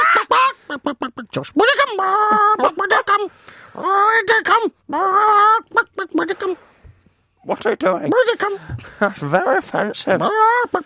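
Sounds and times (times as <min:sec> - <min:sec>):
person vocally imitating chicken squawking and clucking: 0:00.0 - 0:06.6, 0:10.2 - 0:10.8
speech: 0:01.2 - 0:06.7, 0:07.4 - 0:10.8.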